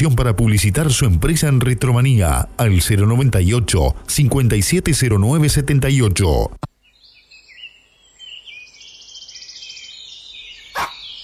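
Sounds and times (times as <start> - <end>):
speech: 0.0 - 6.7
high-pitched birdsong chirping: 6.8 - 11.2
dog bark: 10.8 - 11.0.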